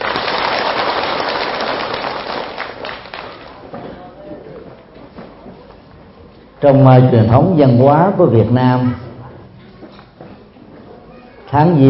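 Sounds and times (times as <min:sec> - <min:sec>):
crowd of Buddhist followers applauding at a New Year sutra session: 0:00.0 - 0:03.7
speech: 0:06.6 - 0:09.0, 0:11.5 - 0:11.8.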